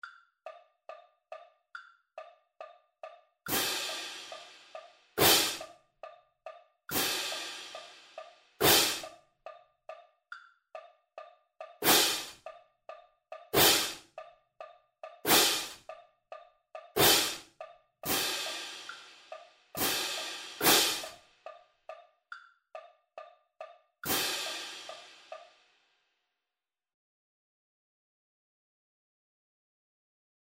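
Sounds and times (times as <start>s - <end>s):
cymbals playing a double beat at 140 BPM: 3.5s - 5.7s, 6.9s - 9.1s, 11.8s - 12.4s, 13.6s - 14.0s, 15.3s - 15.8s, 17.0s - 17.4s, 18.1s - 21.2s, 24.1s - 25.6s.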